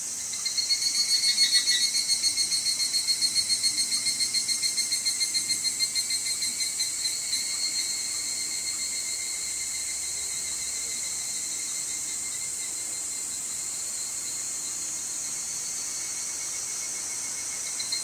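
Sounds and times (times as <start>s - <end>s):
evening cicada shrill drone: 0.2s - 18.0s.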